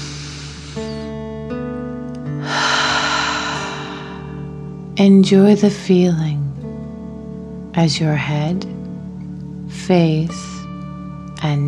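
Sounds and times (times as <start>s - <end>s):
slow deep breath in and out during a children's guided relaxation exercise: 0.0s - 1.0s, 2.4s - 4.8s
soft sustained musical tones: 0.0s - 11.6s
speech: 5.0s - 6.6s, 7.8s - 8.8s, 9.7s - 10.6s, 11.4s - 11.6s.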